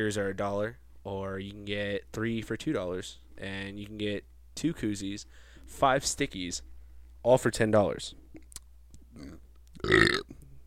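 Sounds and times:
speech: 0.0s - 8.2s, 9.2s - 10.4s
quiet throat sound: 9.1s - 10.6s
loud guttural burp: 9.2s - 10.4s.

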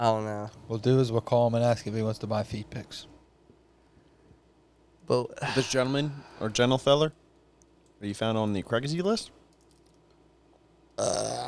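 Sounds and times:
speech: 0.0s - 3.1s, 5.1s - 7.2s, 8.0s - 9.4s, 11.0s - 11.4s
person burping: 11.0s - 11.4s.

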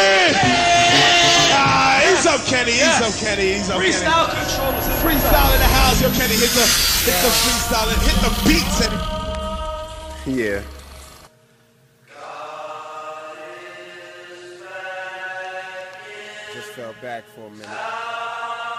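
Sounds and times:
large crowd screaming and yelling at a live concert: 0.0s - 11.1s
speech: 2.6s - 9.2s, 10.3s - 10.8s, 16.7s - 18.0s.

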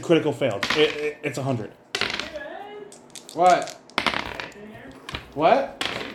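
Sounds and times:
speech: 0.1s - 1.8s, 3.4s - 3.8s, 5.4s - 5.8s
dice rolling on a table: 0.6s - 1.1s, 1.9s - 6.1s.

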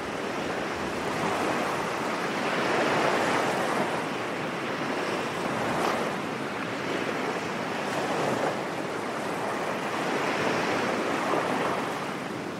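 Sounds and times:
ocean waves crashing on the shore and rocks: 0.0s - 12.5s
wind on a beach: 0.0s - 12.5s.

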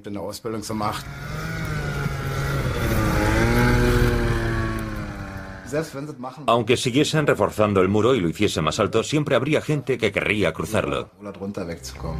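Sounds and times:
speech: 0.0s - 1.4s, 5.7s - 12.1s
microlight aircraft engine and propeller buzzing: 1.0s - 5.7s.

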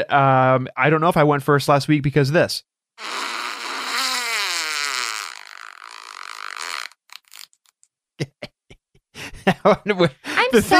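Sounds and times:
speech: 0.0s - 3.2s, 9.6s - 10.7s
fart sound effect from a phone app: 3.0s - 7.5s
laughter: 8.2s - 8.6s, 9.2s - 10.7s.

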